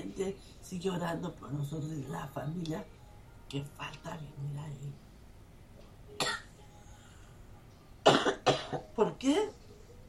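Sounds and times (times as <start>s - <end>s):
low room hum: 0.0s - 10.0s
speech: 0.2s - 5.0s, 8.5s - 9.6s
person coughing: 6.2s - 6.5s, 8.0s - 8.9s.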